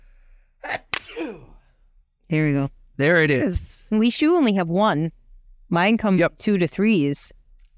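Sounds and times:
sneeze: 0.7s - 1.6s
speech: 2.3s - 7.4s.

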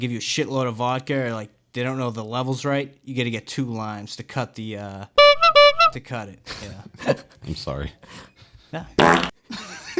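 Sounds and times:
speech: 0.0s - 5.2s, 5.9s - 9.9s
fart sound effect from a soundboard: 9.0s - 9.4s.

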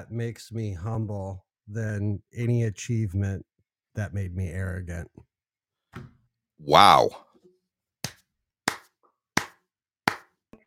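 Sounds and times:
speech: 0.0s - 5.3s, 6.0s - 7.3s
hands clapping: 8.0s - 10.4s.

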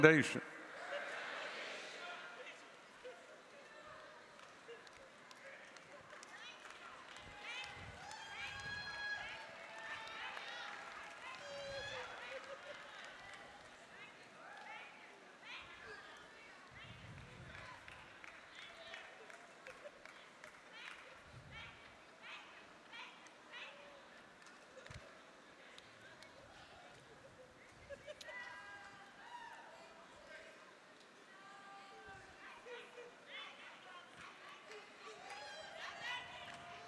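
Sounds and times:
speech: 0.0s - 0.6s
people clapping: 0.0s - 16.2s, 16.8s - 27.1s, 33.9s - 36.8s
busy wash of crowd noise: 0.0s - 36.8s.

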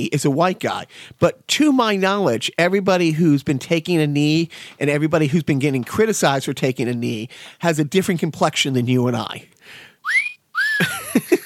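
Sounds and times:
speech: 0.0s - 10.2s
slide whistle: 10.0s - 10.9s.

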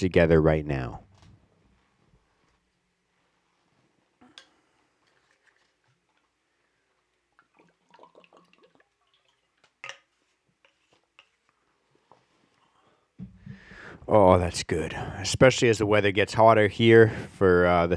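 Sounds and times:
speech: 0.0s - 1.0s, 14.1s - 17.9s
sips of water: 4.2s - 11.8s.

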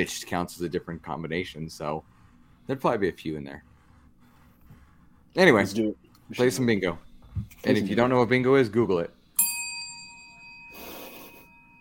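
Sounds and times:
speech: 0.0s - 3.7s, 5.3s - 9.2s
dusty hand bell ringing: 9.4s - 11.8s.

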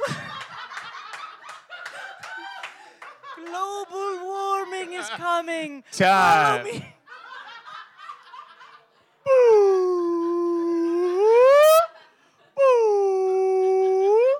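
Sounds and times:
laughter: 0.0s - 9.1s
speech: 5.0s - 6.9s
person imitating whale song: 9.3s - 11.9s, 12.6s - 14.3s.

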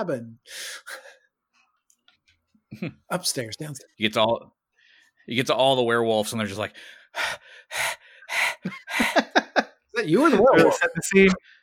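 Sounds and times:
speech: 0.0s - 1.1s, 2.7s - 4.6s, 5.3s - 9.2s, 10.0s - 11.5s
person imitating heavy panting: 7.2s - 9.2s
laughter: 8.6s - 11.4s.

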